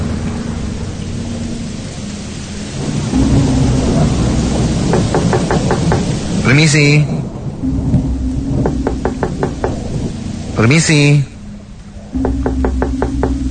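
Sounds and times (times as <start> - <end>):
rain-like noise: 0.0 - 13.4
rapid knocking on a door: 4.9 - 6.1, 8.6 - 9.8, 12.2 - 13.4
speech: 6.6 - 7.2, 10.6 - 11.3.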